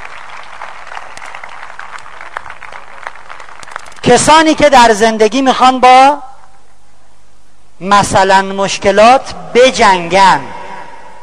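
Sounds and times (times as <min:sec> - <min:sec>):
crowd clapping: 0:00.0 - 0:04.2
speech: 0:04.1 - 0:06.3, 0:07.8 - 0:10.5.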